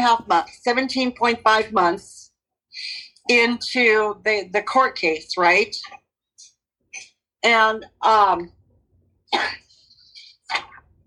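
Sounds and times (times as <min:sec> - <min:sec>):
speech: 0:00.0 - 0:02.2, 0:02.8 - 0:06.0, 0:07.4 - 0:08.6, 0:09.3 - 0:09.6
person coughing: 0:09.3 - 0:10.8.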